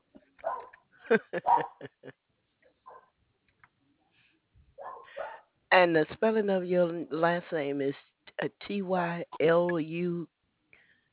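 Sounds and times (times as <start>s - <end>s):
dog barking: 0.4s - 0.8s, 1.4s - 1.8s, 2.9s - 3.1s, 4.8s - 5.4s
laughter: 1.1s - 2.1s
speech: 1.1s - 2.2s, 5.2s - 10.4s.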